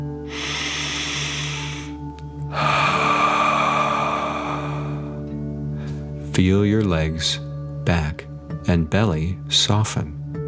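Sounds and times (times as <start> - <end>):
exhale rushing out: 0.0 - 5.4
breath drawn in: 0.0 - 6.0
speech: 6.4 - 10.2.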